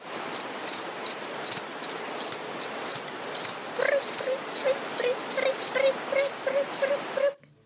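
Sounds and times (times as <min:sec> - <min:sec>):
soft hiss: 0:00.0 - 0:07.6
cricket chirping by stridulation: 0:00.3 - 0:06.9.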